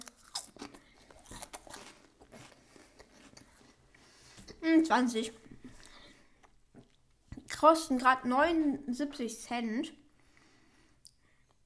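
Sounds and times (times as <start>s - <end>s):
crunching light potato chips while tasting them: 0.0s - 4.0s
chewing potato chips: 0.0s - 4.6s
speech: 4.7s - 5.4s, 7.6s - 10.0s.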